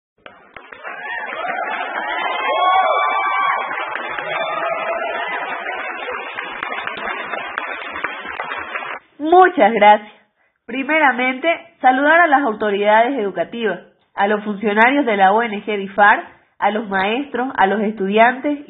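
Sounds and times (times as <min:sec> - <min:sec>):
crowd clapping: 0:00.2 - 0:09.0
speech: 0:09.4 - 0:18.6.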